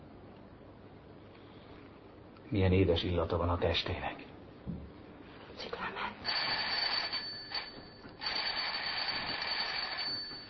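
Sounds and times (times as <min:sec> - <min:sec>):
speech: 0:02.5 - 0:04.8
loud continuous electric bell ringing: 0:06.2 - 0:10.4.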